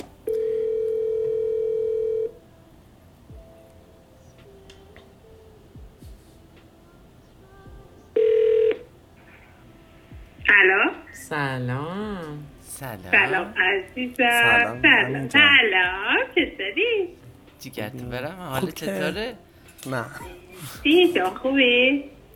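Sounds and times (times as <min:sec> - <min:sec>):
telephone dial tone: 0:00.2 - 0:02.4, 0:08.2 - 0:08.9
warbling telephone ring: 0:00.4 - 0:02.4
speech: 0:11.3 - 0:22.1.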